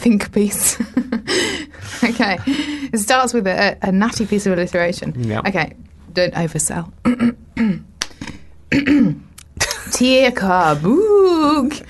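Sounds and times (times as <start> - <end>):
speech: 0.0 - 9.2, 9.9 - 11.8
person clearing throat: 7.0 - 7.9, 8.7 - 9.8.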